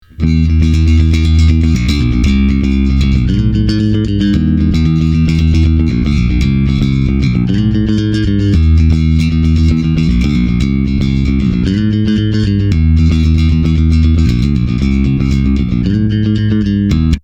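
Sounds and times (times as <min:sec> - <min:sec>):
clean bass guitar: 0:00.0 - 0:17.2.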